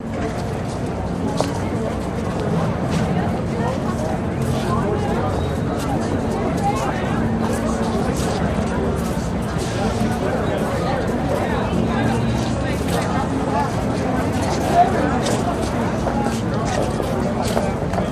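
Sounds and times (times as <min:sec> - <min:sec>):
waiting crowd murmuring: 0:00.0 - 0:18.0.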